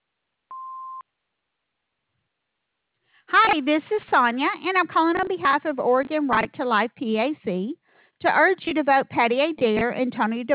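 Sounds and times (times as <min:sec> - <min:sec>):
steady electronic answering machine beep: 0:00.5 - 0:01.0
speech: 0:03.5 - 0:10.5.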